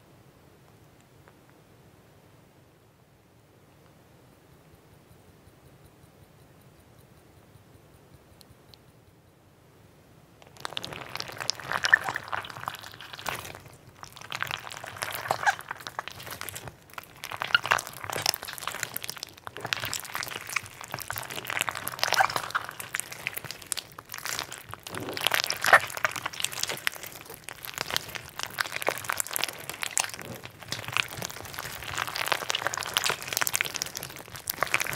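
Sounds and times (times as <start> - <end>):
sponge slime being squeezed and handled: 10.4 - 34.9.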